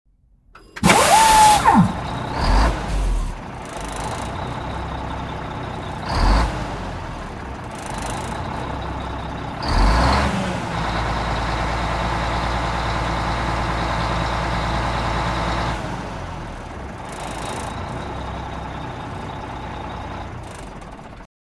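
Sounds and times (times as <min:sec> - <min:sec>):
big rig truck: 0:00.6 - 0:21.3.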